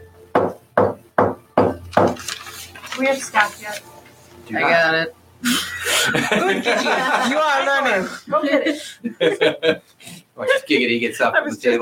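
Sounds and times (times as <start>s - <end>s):
firm knocking on a wooden front door: 0.4s - 2.2s
speech: 3.0s - 3.9s, 4.5s - 11.8s
laughter: 5.5s - 9.9s.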